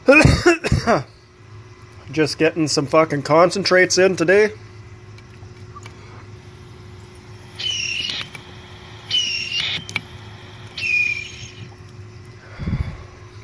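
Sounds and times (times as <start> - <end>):
speech: 0.9 - 1.1, 2.1 - 4.6
carb cap being lifted off a dab rig whistling: 4.9 - 12.4.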